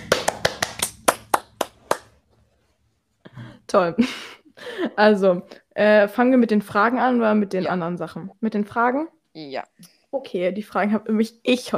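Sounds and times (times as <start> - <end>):
short burst of sharp hand clapping: 0.0 - 2.2
speech: 3.7 - 11.7.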